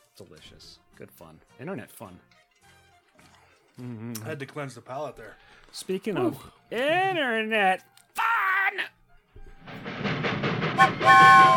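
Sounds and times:
speech: 0.2s - 2.4s, 3.8s - 8.0s
train passing on railway tracks: 9.4s - 11.5s
loud sustained horn-like blast: 10.8s - 11.5s.

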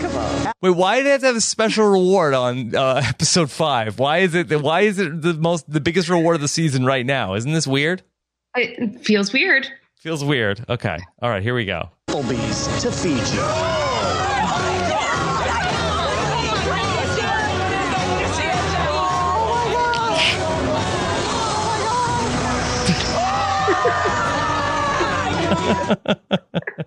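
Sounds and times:
speech: 0.6s - 14.2s, 25.7s - 26.8s
laughter: 2.8s - 3.4s, 23.6s - 26.8s
crowd of many voices shouting and chattering excitedly: 12.8s - 26.1s.

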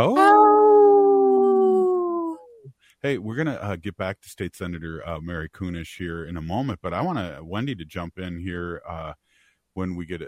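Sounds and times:
wolf howling: 0.0s - 2.4s
speech: 3.0s - 9.2s, 9.8s - 10.2s.

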